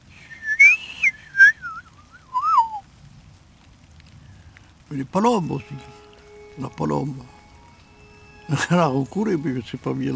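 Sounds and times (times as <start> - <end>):
person whistling imitation of woodpecker spring call: 0.2 - 2.8
speech: 4.9 - 6.0, 6.6 - 7.4, 8.5 - 10.1.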